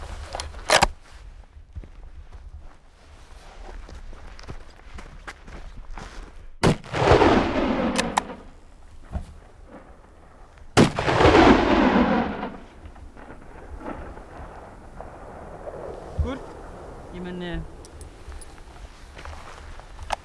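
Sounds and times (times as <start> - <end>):
rifle shots outdoors in a coastal area near a glacier: 6.6 - 8.7, 10.8 - 18.5
rolling echoes of rifle shots: 6.6 - 18.9.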